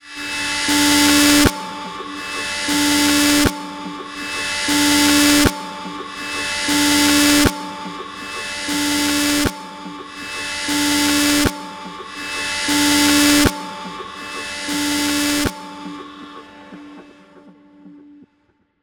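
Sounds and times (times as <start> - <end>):
alarm: 0.0 - 18.0.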